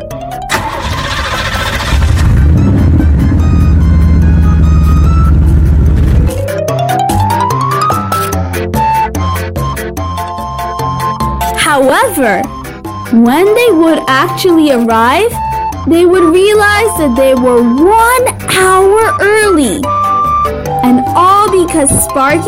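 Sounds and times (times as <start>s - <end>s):
bus engine cranking and roaring to life: 0.4s - 6.4s
upbeat musical passage: 2.5s - 22.4s
speech: 11.8s - 22.4s.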